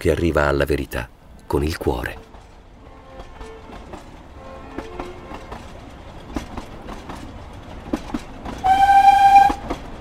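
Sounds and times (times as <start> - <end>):
speech: 0.0 - 2.3
train wheels clattering over track joints: 1.4 - 10.0
loud sustained train horn blast: 4.4 - 5.5, 8.6 - 9.6.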